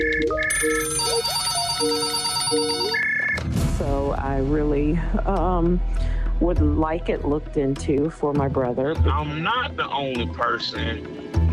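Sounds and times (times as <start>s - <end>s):
phone ringing with an electronic melodic ringtone: 0.0s - 3.5s
speech: 4.3s - 11.5s.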